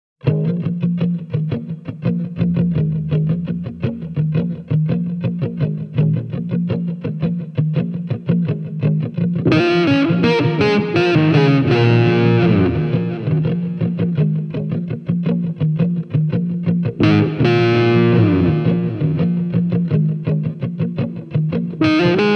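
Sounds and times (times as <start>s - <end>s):
custom guitars: 0.2s - 22.3s.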